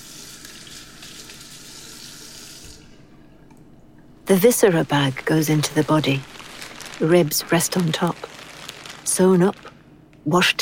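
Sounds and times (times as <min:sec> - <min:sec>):
tap water running while washing hair with hibiscus and coconut shampoo: 0:00.0 - 0:02.8
speech: 0:04.3 - 0:06.3, 0:07.0 - 0:08.2, 0:09.2 - 0:10.5.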